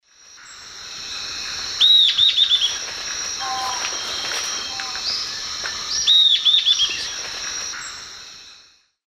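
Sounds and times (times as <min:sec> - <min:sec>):
Lathrotriccus euleri song or call in South American Eastern Lowlands: 0:01.8 - 0:02.8, 0:03.4 - 0:08.0.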